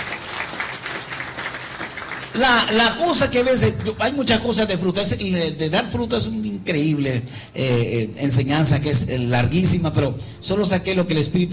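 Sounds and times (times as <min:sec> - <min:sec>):
church congregation applause during a sermon: 0:00.0 - 0:04.0
speech: 0:02.4 - 0:11.5.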